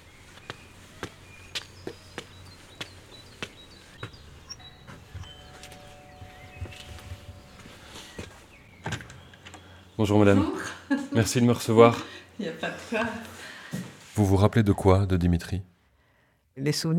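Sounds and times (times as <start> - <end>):
footsteps climbing a short flight of steps up to a white villa: 0.0 - 9.7
faint birdsong outdoors: 0.0 - 13.7
villa doorbell giving a long buzzing ring: 4.5 - 8.5
speech: 10.0 - 13.4, 14.2 - 15.7, 16.6 - 16.9.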